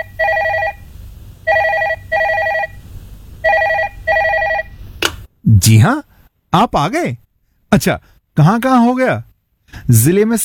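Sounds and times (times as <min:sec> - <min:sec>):
telephone ringing in short electronic bursts: 0:00.0 - 0:02.8, 0:03.4 - 0:04.7
speech: 0:05.5 - 0:10.4.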